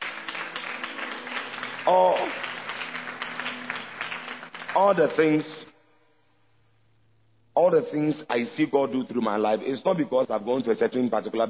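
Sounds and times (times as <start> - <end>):
audience clapping: 0.0 - 5.5
speech: 1.9 - 2.5, 4.8 - 5.7, 7.7 - 11.4.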